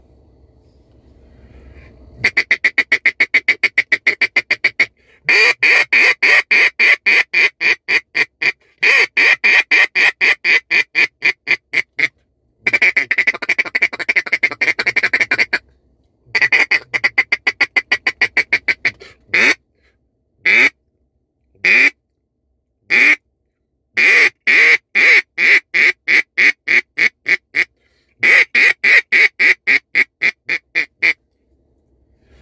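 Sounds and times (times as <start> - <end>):
single-reed duck call blown in loud quacking bursts: 2.2 - 15.6, 16.3 - 19.6, 20.4 - 20.8, 21.6 - 22.0, 22.9 - 23.2, 24.0 - 31.2.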